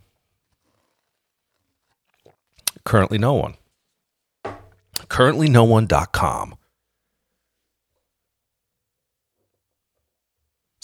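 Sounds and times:
slurping sip of coffee: 0:00.5 - 0:02.7
speech: 0:02.9 - 0:03.6, 0:05.2 - 0:06.6.

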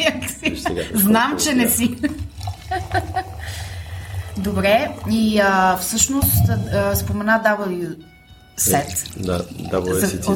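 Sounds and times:
laughter: 0:00.0 - 0:03.6
speech: 0:00.8 - 0:02.3, 0:04.4 - 0:10.3
wine pouring into a glass: 0:01.4 - 0:06.1, 0:08.6 - 0:10.3.

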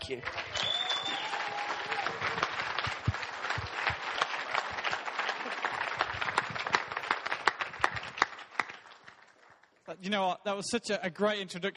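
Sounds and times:
large church audience applauding: 0:00.0 - 0:09.8
speech: 0:00.1 - 0:00.4, 0:10.0 - 0:11.7
cheers and whoops: 0:00.4 - 0:02.7.

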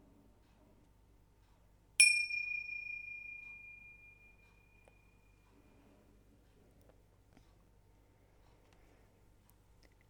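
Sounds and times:
meditation bell struck and ringing: 0:02.0 - 0:05.1.

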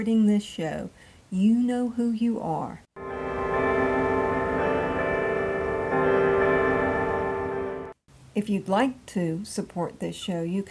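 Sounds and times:
speech: 0:00.0 - 0:02.8, 0:08.4 - 0:10.6
bells ringing: 0:03.0 - 0:08.0.

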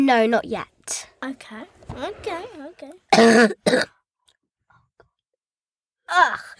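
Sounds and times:
speech: 0:00.0 - 0:04.0, 0:06.1 - 0:06.5
short throaty vocal sound: 0:03.1 - 0:03.9
person coughing: 0:03.1 - 0:04.0.

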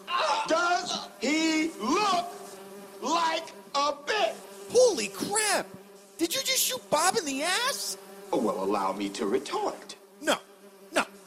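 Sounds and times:
bee buzzing: 0:00.0 - 0:11.2
speech: 0:07.3 - 0:10.4.

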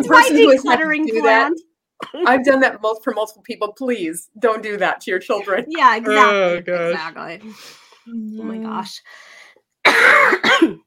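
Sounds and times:
speech: 0:00.0 - 0:09.3
person coughing harshly: 0:09.9 - 0:10.8.

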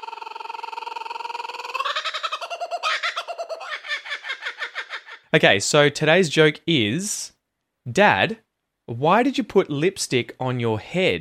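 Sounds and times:
kookaburra calling: 0:00.0 - 0:05.3
speech: 0:05.3 - 0:07.3, 0:07.9 - 0:11.1.

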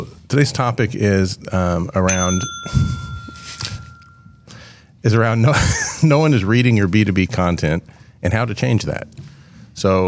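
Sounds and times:
speech: 0:00.3 - 0:03.0, 0:05.0 - 0:10.0
bell ringing: 0:02.1 - 0:04.6.

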